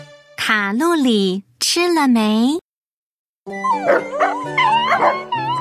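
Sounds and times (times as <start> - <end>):
speech: 0.5 - 2.6, 3.5 - 5.3
several dogs barking, yelping and whining in a pet shop: 3.5 - 5.5.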